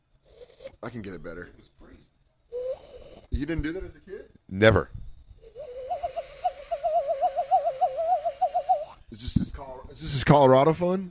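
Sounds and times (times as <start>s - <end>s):
speech: 0.8s - 1.9s, 3.4s - 5.0s, 10.0s - 11.0s
person imitating a warbling bird call: 2.5s - 3.3s, 5.4s - 9.0s.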